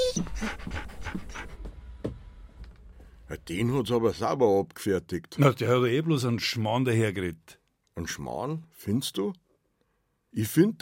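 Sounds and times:
dog panting: 0.0 - 1.8
speech: 3.4 - 9.4, 10.3 - 10.7.

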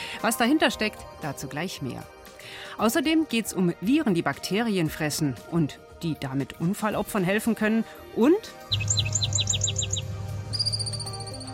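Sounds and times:
speech: 0.2 - 9.3
chipmunk chirping and trilling: 8.7 - 11.5.

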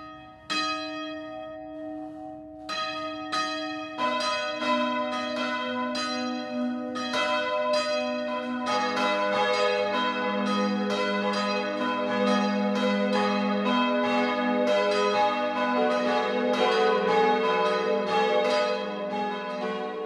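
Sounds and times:
three church bells of a Catholic church ringing the midday peal in Kreußen: 0.0 - 20.0.

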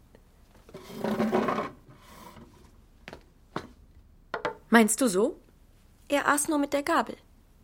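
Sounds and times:
wooden chair scraping across a hard floor: 0.7 - 2.7
sharp wooden knocks of a chair settling: 4.3 - 4.6
speech: 4.7 - 5.4, 6.1 - 7.2.

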